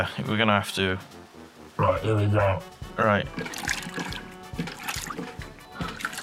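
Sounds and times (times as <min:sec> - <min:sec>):
speech: 0:00.0 - 0:01.2, 0:01.8 - 0:03.8
clogged toilet with a deflated balloon inside being flushed: 0:03.3 - 0:06.2.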